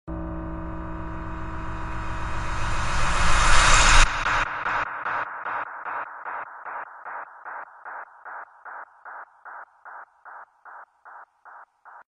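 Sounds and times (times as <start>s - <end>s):
scary tones: 0.1s - 8.0s.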